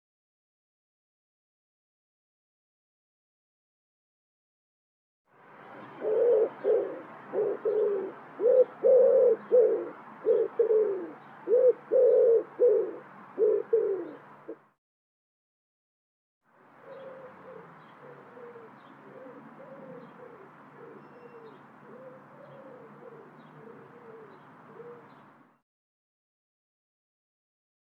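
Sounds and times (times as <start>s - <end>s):
bird cooing: 5.8s - 14.6s, 16.8s - 25.4s.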